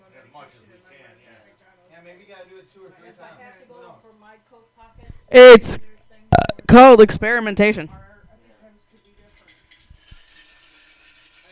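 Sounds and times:
speech: 0:00.4 - 0:06.0, 0:06.7 - 0:08.0
ice cubes rattling and clinking: 0:09.4 - 0:11.5
liquid pouring with a hissing splash: 0:09.5 - 0:11.5.

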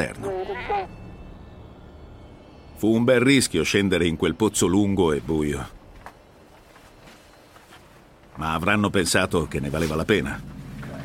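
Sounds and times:
goat bleating: 0:00.0 - 0:01.0
speech: 0:00.0 - 0:01.0, 0:02.8 - 0:05.8, 0:08.4 - 0:10.6.

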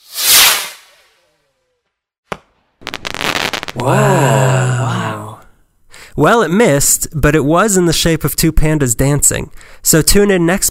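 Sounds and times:
firecracker crack: 0:00.0 - 0:01.4, 0:02.2 - 0:04.4
dense crackling of firecracker: 0:02.3 - 0:04.0
firecracker sputtering hiss: 0:02.8 - 0:03.9
speech: 0:03.7 - 0:05.0, 0:06.2 - 0:10.6.

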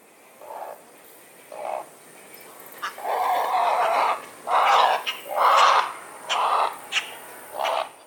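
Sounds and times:
disturbed great blue heron clucks and squawking alarm calls: 0:02.8 - 0:08.0.

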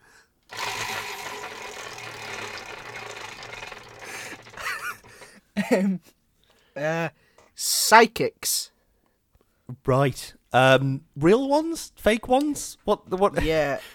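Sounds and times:
prize wheel spinning with mechanical clicking: 0:00.5 - 0:05.4
speech: 0:05.7 - 0:06.2, 0:06.8 - 0:08.7, 0:09.8 - 0:13.9.

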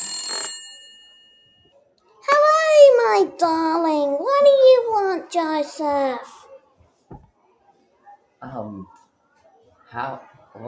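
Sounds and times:
telephone bell ringing: 0:00.0 - 0:01.8
speech: 0:03.1 - 0:06.3, 0:08.4 - 0:09.0, 0:09.9 - 0:10.6.

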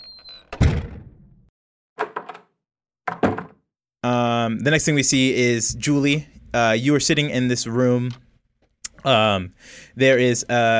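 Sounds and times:
doors shutting with heavy thuds: 0:00.1 - 0:01.4, 0:03.1 - 0:03.6
speech: 0:04.0 - 0:08.2, 0:09.0 - 0:10.7.

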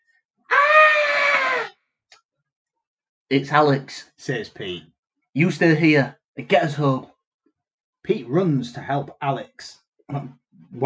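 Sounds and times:
loud high-pitched scream: 0:00.5 - 0:01.7
speech: 0:03.3 - 0:07.1, 0:08.0 - 0:10.8.

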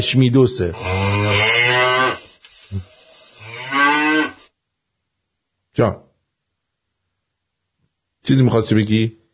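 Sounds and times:
speech: 0:00.0 - 0:01.4, 0:02.7 - 0:02.9, 0:05.8 - 0:06.0, 0:08.2 - 0:09.2
cow mooing: 0:00.8 - 0:02.2, 0:03.4 - 0:04.5.

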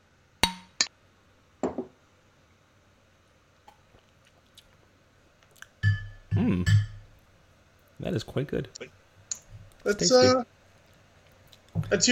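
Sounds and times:
glasses clinking together in a toast: 0:05.8 - 0:07.1
speech: 0:08.1 - 0:09.0, 0:09.8 - 0:10.5, 0:11.9 - 0:12.1.

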